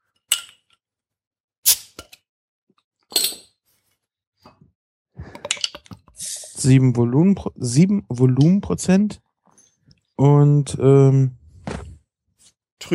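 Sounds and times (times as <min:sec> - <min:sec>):
bottle of cloudy India Pale Ale being opened, cap and glass clinking: 0:03.1 - 0:03.5
speech: 0:06.6 - 0:09.2, 0:10.2 - 0:11.4.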